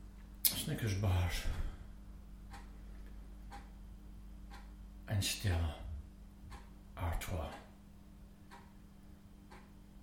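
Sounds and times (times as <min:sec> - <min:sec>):
low constant room hum: 0:00.0 - 0:10.0
speech: 0:00.7 - 0:01.7, 0:05.1 - 0:05.8, 0:07.0 - 0:07.6
clock ticking: 0:02.5 - 0:02.8, 0:03.4 - 0:03.8, 0:04.4 - 0:04.8, 0:06.5 - 0:07.7, 0:08.4 - 0:08.8, 0:09.5 - 0:09.8.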